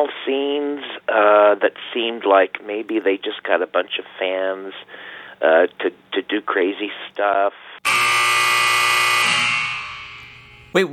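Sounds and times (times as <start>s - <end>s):
speech: 0.0s - 8.1s, 10.7s - 10.9s
loud harsh electronic call-in cutoff buzzer: 7.8s - 10.7s.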